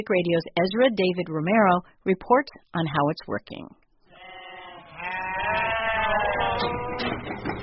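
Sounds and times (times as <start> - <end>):
speech: 0.0 - 3.8
sheep bleating on a sheep dairy farm in California's Central Valley: 4.1 - 7.2
busy farmyard murmur on a sheep dairy farm: 4.1 - 7.6.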